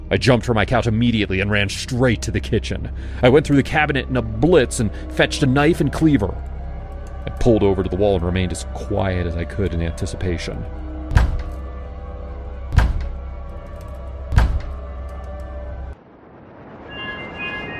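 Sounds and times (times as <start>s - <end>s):
speech: 0.1s - 6.5s, 7.3s - 10.8s
heavy booming bangs of hands on a door: 11.1s - 11.6s, 12.8s - 13.2s, 14.3s - 14.8s.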